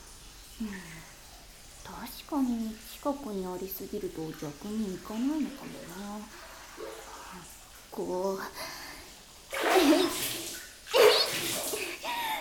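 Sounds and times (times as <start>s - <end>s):
speech: 2.0s - 8.8s
seawater splashing: 9.5s - 12.0s.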